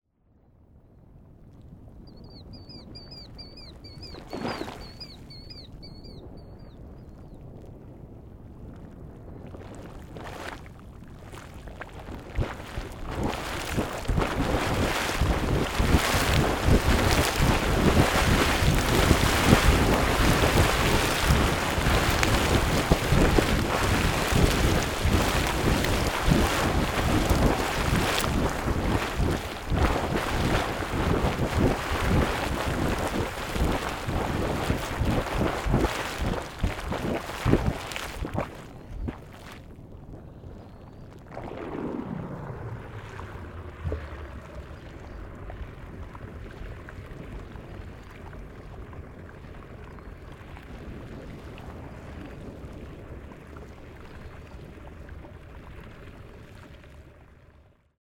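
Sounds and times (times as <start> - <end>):
Anemone Geyser in Yellowstone: 12.0 - 38.6, 41.2 - 47.4.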